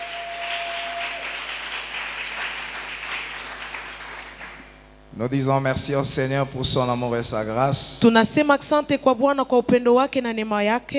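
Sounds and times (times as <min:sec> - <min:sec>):
audience clapping hard at a church service: 0:00.0 - 0:04.8
speech: 0:05.2 - 0:10.9.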